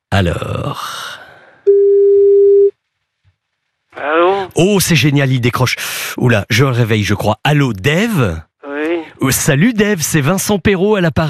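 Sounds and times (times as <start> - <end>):
speech: 0.1 - 1.0, 4.5 - 8.5, 9.2 - 11.2
telephone ringing tone beep while a call is placed: 1.7 - 2.7.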